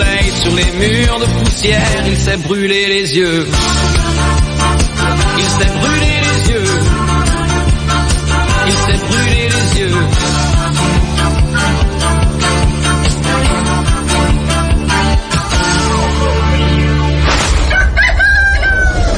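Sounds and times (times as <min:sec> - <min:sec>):
steady rhythmic music: 0:00.0 - 0:17.3
speech: 0:00.4 - 0:04.4, 0:05.4 - 0:08.0
rooster crowing: 0:17.6 - 0:19.1.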